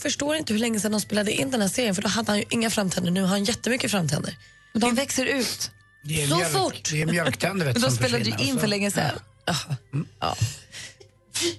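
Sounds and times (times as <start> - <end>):
speech: 0.0 - 11.5
laughter: 7.0 - 8.6
intake of breath: 10.5 - 11.5
person sneezing: 11.4 - 11.5.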